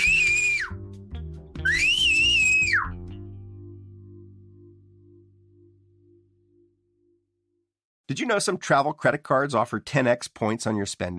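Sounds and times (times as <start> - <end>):
loud piercing human whistles: 0.0 - 0.8, 1.6 - 3.0
speech: 8.1 - 11.1.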